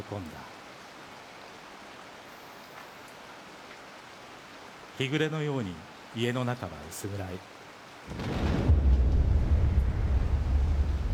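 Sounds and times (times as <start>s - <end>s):
speech: 0.1s - 0.6s, 5.0s - 8.5s
loud explosion boom with deep heavy rumble: 8.1s - 11.1s.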